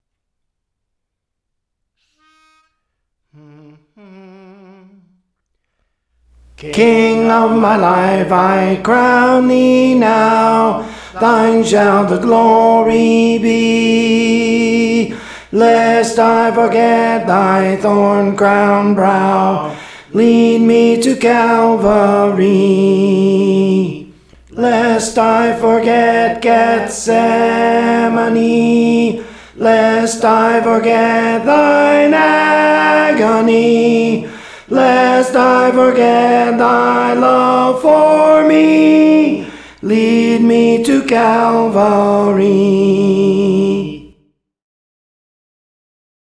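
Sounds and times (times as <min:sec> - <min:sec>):
tenor singing a hymn: 0:06.3 - 0:44.2.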